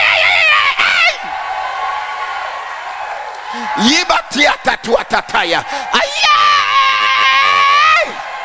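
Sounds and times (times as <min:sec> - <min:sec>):
man shouting loudly: 0:00.0 - 0:01.2, 0:03.7 - 0:08.2
speech: 0:03.8 - 0:06.2.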